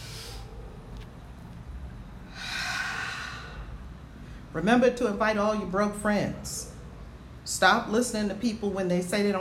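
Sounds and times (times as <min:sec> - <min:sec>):
deep breathing: 0:00.0 - 0:00.8, 0:02.2 - 0:04.5
speech: 0:04.6 - 0:06.6, 0:07.6 - 0:09.3.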